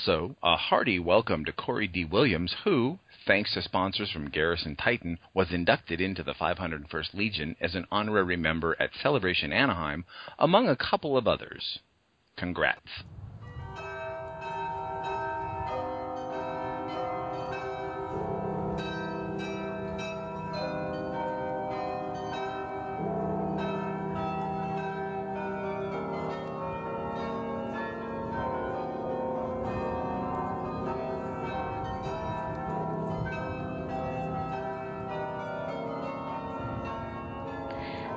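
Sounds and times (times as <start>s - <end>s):
speech: 0.0s - 13.2s
parliament carillon bells playing a tune: 13.5s - 38.1s.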